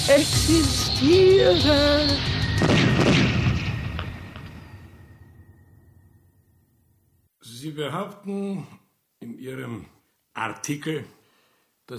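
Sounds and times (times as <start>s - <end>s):
speech: 0.1s - 3.2s, 7.6s - 11.2s
deep artillery boom with long rumble in a radio drama: 2.4s - 5.3s.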